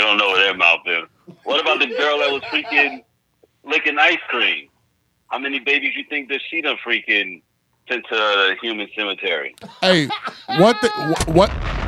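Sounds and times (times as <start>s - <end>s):
speech: 0.5s - 4.7s, 5.3s - 11.7s
bomb explosion sound effect: 11.2s - 11.8s.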